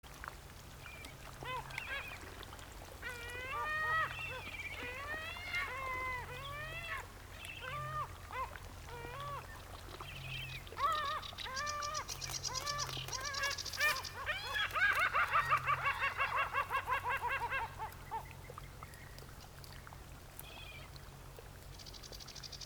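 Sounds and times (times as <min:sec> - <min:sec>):
Caspian gull Larus cachinnans calling: 0:03.0 - 0:09.6, 0:10.6 - 0:18.3.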